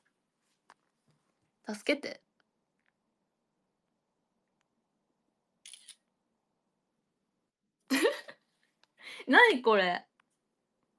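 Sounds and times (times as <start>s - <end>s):
speech: 1.7s - 2.3s, 9.3s - 10.1s
camera shutter clicks as a photo is taken: 5.6s - 6.0s.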